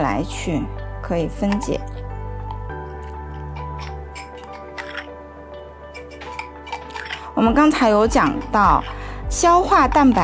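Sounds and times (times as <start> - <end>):
speech: 0.2 - 2.0, 7.4 - 10.2
liquid mixture being stirred during a protein digestion demonstration: 1.5 - 10.2.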